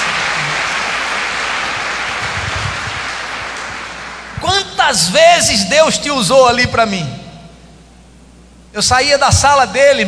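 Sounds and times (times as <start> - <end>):
audience applauding: 0.0 - 4.4
speech: 4.9 - 7.2, 8.7 - 10.0.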